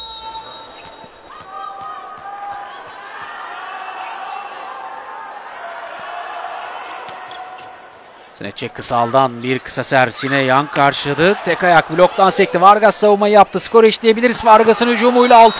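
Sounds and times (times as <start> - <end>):
squeaks: 0.0 - 1.9, 7.2 - 7.8
crowd roar in an indoor sports hall: 0.0 - 15.5
speech: 8.4 - 15.5.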